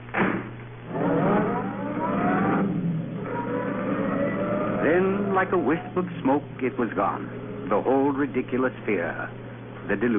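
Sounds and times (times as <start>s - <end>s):
roadster engine starting, revving and pulling away: 0.8s - 7.9s
speech: 5.0s - 10.1s.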